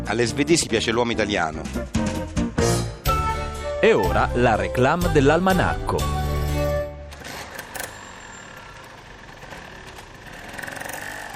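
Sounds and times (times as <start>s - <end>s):
speech: 0.1s - 2.4s, 3.8s - 6.2s
small scooter engine running: 6.2s - 11.3s.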